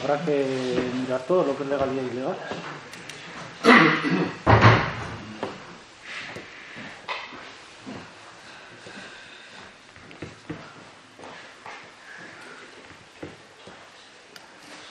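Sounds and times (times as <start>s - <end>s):
speech: 0.0s - 2.9s
faint shuffling: 0.0s - 3.6s, 5.2s - 14.9s
door being pulled shut with heavy thuds: 4.4s - 5.2s.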